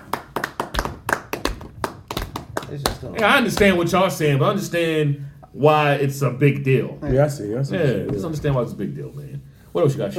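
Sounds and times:
person clapping hands: 0.0 - 3.8
speech: 2.7 - 10.1.

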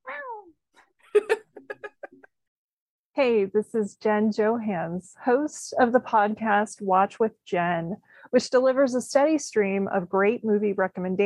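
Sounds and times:
person imitating a cat meowing: 0.0 - 0.5
laughter: 1.2 - 2.3
speech: 3.2 - 11.2.

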